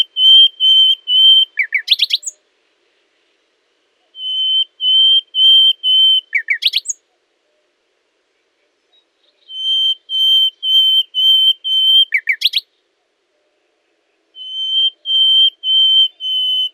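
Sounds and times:
common nightingale Luscinia megarhynchos singing long pure whistles: 0:00.0 - 0:02.4, 0:04.1 - 0:07.0, 0:08.9 - 0:12.7, 0:14.4 - 0:16.7.

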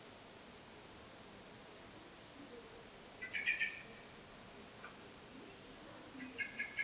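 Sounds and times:
common blackbird clicking chink calls, Turdus merula: 0:03.2 - 0:03.9, 0:06.2 - 0:06.8.

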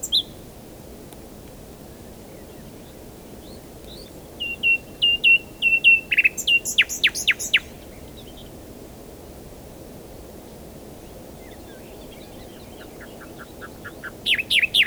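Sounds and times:
common nightingale Luscinia megarhynchos singing: 0:03.5 - 0:08.5, 0:11.4 - 0:14.8.

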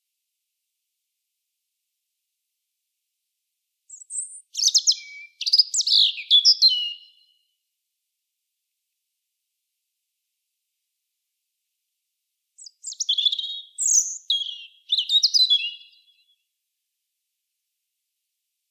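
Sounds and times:
European robin Erithacus rubecula warbling song of thin notes and trills: 0:03.9 - 0:07.3, 0:12.6 - 0:16.3.

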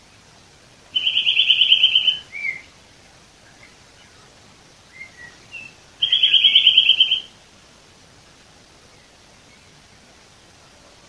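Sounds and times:
Eurasian nuthatch Sitta europaea piping, chirping and trilling: 0:00.9 - 0:02.7, 0:04.9 - 0:07.3.

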